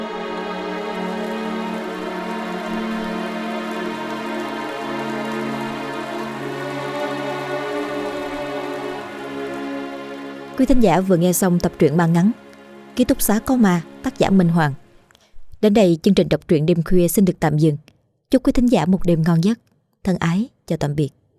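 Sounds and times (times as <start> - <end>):
rain falling: 0.0 - 14.6
sustained musical tones: 0.0 - 15.1
speech: 10.6 - 12.4, 13.0 - 14.8, 15.6 - 21.2.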